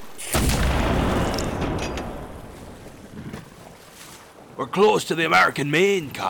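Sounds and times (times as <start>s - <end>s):
cannon shot fired from a sailing ship across another vessel's bow: 0.2s - 2.5s
speech: 4.6s - 6.2s.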